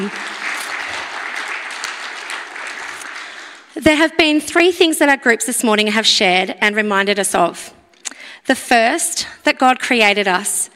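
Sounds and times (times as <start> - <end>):
speech: 0.0 - 0.3, 3.8 - 7.8, 8.4 - 10.7
church audience applause: 0.0 - 3.7.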